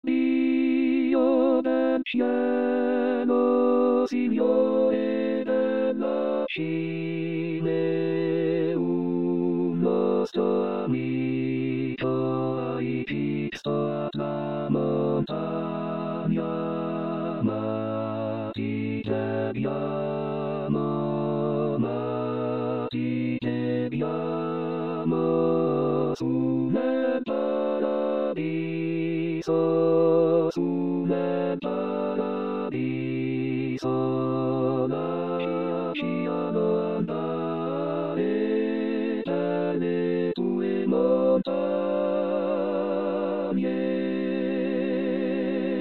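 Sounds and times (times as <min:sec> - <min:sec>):
tutti ensemble playing a chorale: 0:00.0 - 0:45.7.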